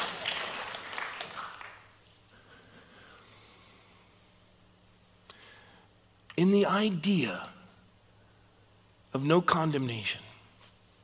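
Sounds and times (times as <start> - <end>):
person clapping hands: 0.0 - 1.9
hiss: 0.0 - 11.0
speech: 6.4 - 7.5, 9.2 - 10.2.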